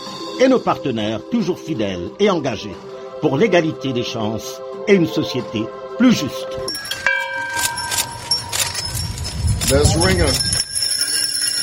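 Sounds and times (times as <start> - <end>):
speech: 0.4 - 6.9, 9.7 - 10.5
commemorative bells ringing: 6.7 - 11.6
bustle: 6.9 - 11.6.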